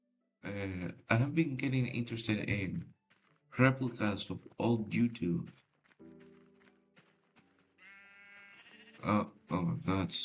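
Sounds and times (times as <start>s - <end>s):
speech: 0.4s - 5.6s, 9.0s - 10.2s
sheep bleating: 3.5s - 4.0s, 7.6s - 9.4s.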